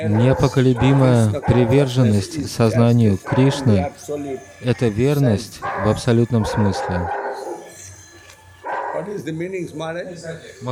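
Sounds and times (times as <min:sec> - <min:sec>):
dog barking: 0:00.0 - 0:02.2, 0:03.2 - 0:03.9, 0:05.6 - 0:07.7, 0:08.6 - 0:09.2
speech: 0:00.0 - 0:07.2, 0:09.1 - 0:10.6.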